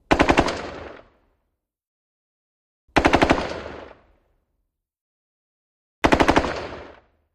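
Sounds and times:
M16 rifle rapid fire: 0.1s - 1.2s, 3.0s - 4.1s, 6.0s - 7.1s.

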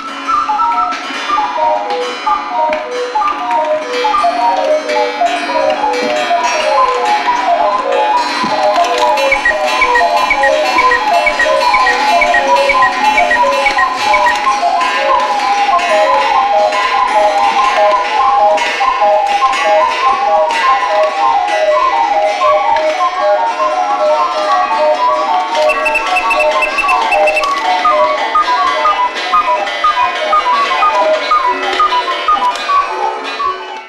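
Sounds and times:
many cuckoo clocks chiming and ringing: 0.4s - 33.8s.

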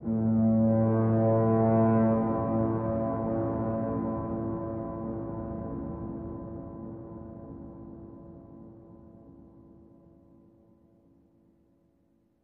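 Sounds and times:
fog horn: 0.0s - 4.9s.

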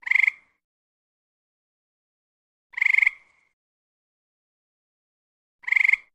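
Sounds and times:
various frogs calling: 0.0s - 0.6s, 2.8s - 3.4s, 5.6s - 6.1s.

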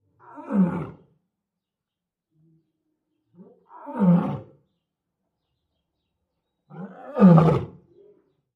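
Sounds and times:
lion roaring: 0.2s - 1.1s, 3.4s - 4.6s, 6.7s - 7.8s.

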